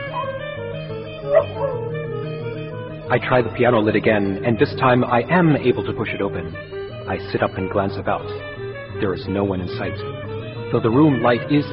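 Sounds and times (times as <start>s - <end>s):
dog bark: 0.0s - 0.5s, 1.2s - 1.9s
faint dog yip: 1.3s - 1.8s
speech: 3.1s - 11.7s.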